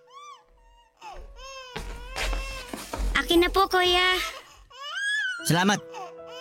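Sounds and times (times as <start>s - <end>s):
infant crying in rising and falling wails: 0.0s - 2.7s, 4.1s - 6.3s
speech: 3.3s - 4.4s, 5.4s - 6.0s.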